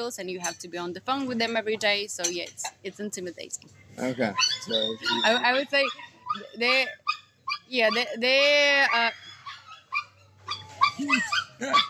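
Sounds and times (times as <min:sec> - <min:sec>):
speech: 0:00.0 - 0:07.0, 0:07.7 - 0:09.2, 0:11.0 - 0:11.8
dog barking and whimpering in high yelping bursts: 0:04.2 - 0:11.8.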